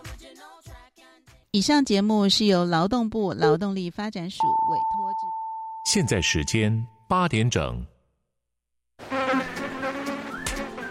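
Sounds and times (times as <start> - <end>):
speech: 1.5 - 7.9
mosquito buzzing: 9.0 - 10.8.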